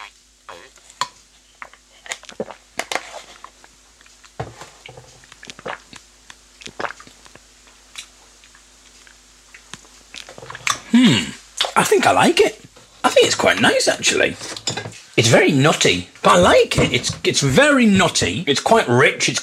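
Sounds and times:
person slurping and gulping cashew nut milk from a carton: 1.6 - 11.8
smacks and swallows while drinking: 3.4 - 10.9
speech: 11.0 - 12.6, 13.2 - 14.6, 15.2 - 19.4.

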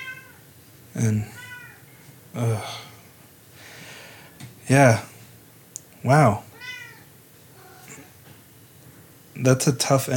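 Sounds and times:
cat giving a soft drawn-out meow: 0.0 - 0.4, 1.2 - 1.8, 6.5 - 8.1
speech: 1.0 - 1.4, 2.3 - 2.9, 4.7 - 5.1, 6.0 - 6.5, 9.4 - 10.1.

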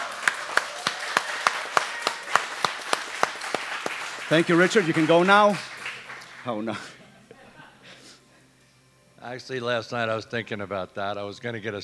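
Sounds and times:
audience clapping in a standing ovation: 0.0 - 8.6
constant hiss: 0.0 - 11.8
laughter: 0.0 - 11.8
speech: 4.3 - 5.7, 6.4 - 7.0, 9.2 - 11.8.

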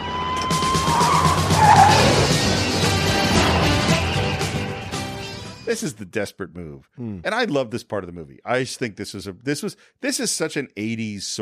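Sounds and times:
high squeal: 0.0 - 4.4
car engine roaring off-road: 0.0 - 5.2
car tires scraping on rough ground: 0.6 - 4.6
car skidding across rough ground off-road into the woods: 0.8 - 4.5
speech: 5.7 - 11.4.

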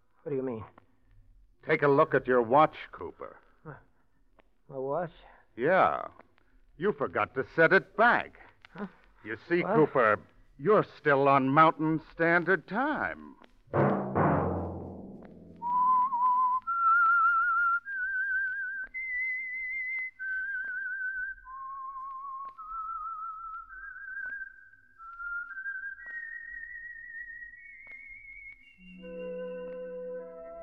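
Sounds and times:
speech: 0.2 - 0.8, 1.6 - 3.9, 4.7 - 14.0
lone whistled tune with slides between pitches: 15.6 - 30.6.

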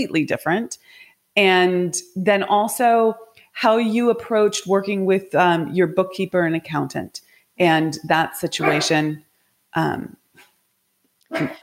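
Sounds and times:
speech: 0.0 - 10.2, 11.3 - 11.6
dog barking: 8.6 - 9.0.

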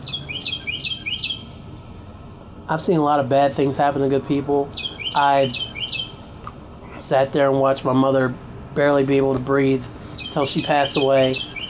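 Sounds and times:
bird chirping: 0.0 - 4.0, 4.6 - 7.0, 10.0 - 11.6
low steady noise: 0.0 - 11.6
speech: 2.7 - 5.7, 7.0 - 11.5.

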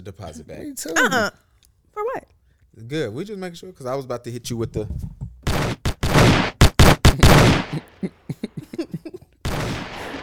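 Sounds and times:
speech: 0.0 - 1.4, 2.8 - 5.2
laughter: 1.0 - 1.3, 7.1 - 9.4, 10.0 - 10.2
gunshot sound effect: 5.5 - 7.8, 9.5 - 10.2.

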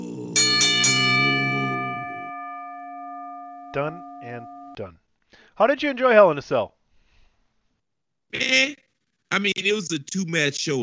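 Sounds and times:
ringside bell struck: 0.4 - 4.8
speech: 3.7 - 6.8, 8.3 - 10.8.

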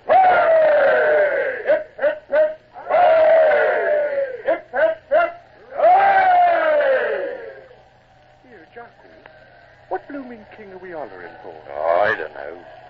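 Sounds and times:
scattered shouts: 0.0 - 7.8
group of voices cheering for the king: 0.0 - 12.8.

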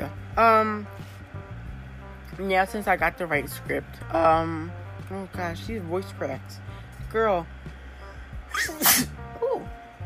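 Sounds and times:
speech: 0.4 - 1.0, 2.4 - 7.6, 8.5 - 9.2
person sneezing: 8.5 - 9.2.

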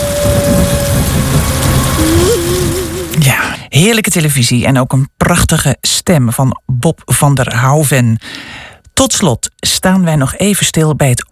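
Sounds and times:
faint wavering tones: 0.0 - 3.2
heavy rain in a cloudburst: 0.0 - 3.5
speech: 3.8 - 11.3.

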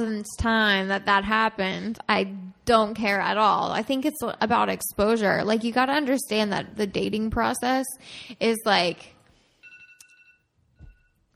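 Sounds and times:
speech: 0.0 - 9.2
phone alarm ringing in electronic tonal bursts: 9.6 - 11.2.

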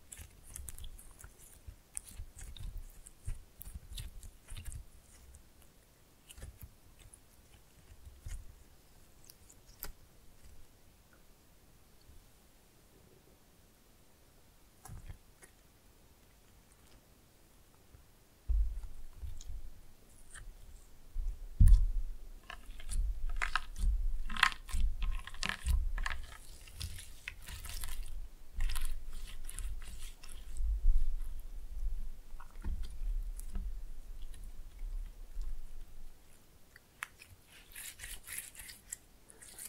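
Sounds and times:
sticky squelches and pops of slime being squeezed: 0.0 - 10.6, 18.5 - 39.6
low thumps: 18.5 - 19.7.

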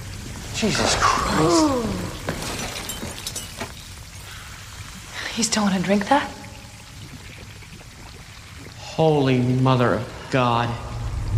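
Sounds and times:
speech: 0.6 - 2.2, 5.4 - 6.4, 9.0 - 11.3
glass canister shattering: 2.2 - 4.0.

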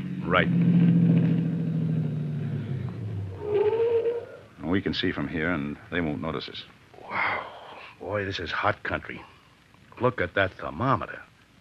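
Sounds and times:
car engine rumbling as car slows to a stop behind a store: 0.0 - 6.6
brief higher whine: 0.0 - 7.4
speech: 0.3 - 1.1, 4.7 - 6.8, 8.0 - 9.3, 10.0 - 11.3.

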